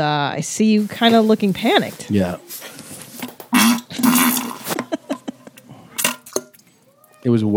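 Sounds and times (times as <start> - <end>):
speech: 0.0 - 2.7, 7.2 - 7.5
popping plop sounds made with the mouth: 3.2 - 6.7
voice imitating a fart: 3.5 - 4.9.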